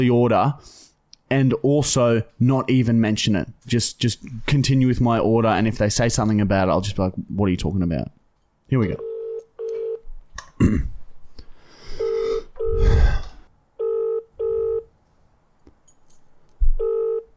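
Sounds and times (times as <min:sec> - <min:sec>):
speech: 0:00.0 - 0:09.1, 0:10.6 - 0:10.9
ringback tone on an outgoing telephone call: 0:09.0 - 0:10.0, 0:12.0 - 0:12.9, 0:13.8 - 0:14.9, 0:16.8 - 0:17.3
breathy noises: 0:10.8 - 0:13.5.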